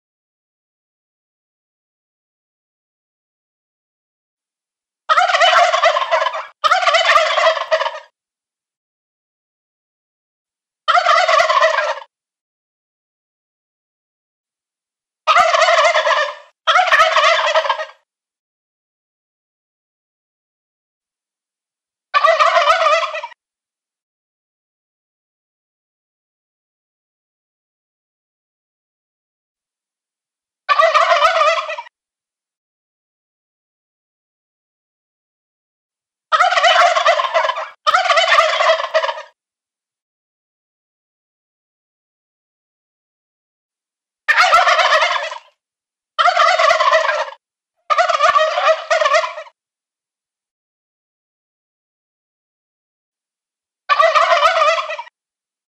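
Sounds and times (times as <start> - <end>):
turkey gobbling: 5.1 - 8.1, 10.9 - 12.1, 15.3 - 18.0, 22.2 - 23.4, 30.7 - 31.9, 36.3 - 39.4, 44.3 - 45.6, 46.2 - 49.6, 53.9 - 55.1.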